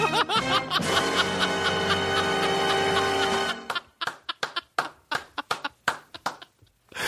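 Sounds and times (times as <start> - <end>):
loud sustained laughter: 0.0 - 6.6
single person clapping hands: 3.6 - 6.5.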